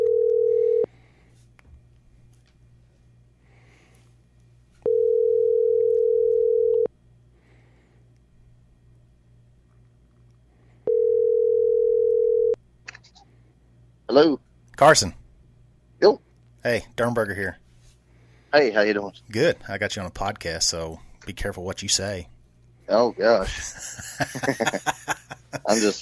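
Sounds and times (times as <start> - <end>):
phone line ringing tone: 0.0 - 0.9, 4.8 - 6.9, 10.9 - 12.6
faint low hum: 0.0 - 25.9
speech: 14.2 - 15.2, 16.0 - 17.6, 18.5 - 25.9
laughter: 23.4 - 25.9.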